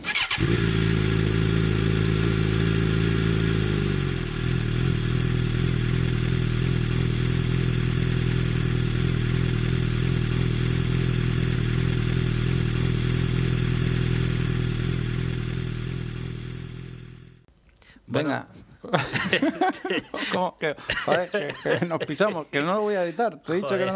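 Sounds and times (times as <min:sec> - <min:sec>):
old engine starting: 0:00.0 - 0:02.9
old engine idling rumble: 0:00.1 - 0:17.5
speech: 0:18.2 - 0:23.9
laughter: 0:18.8 - 0:23.9.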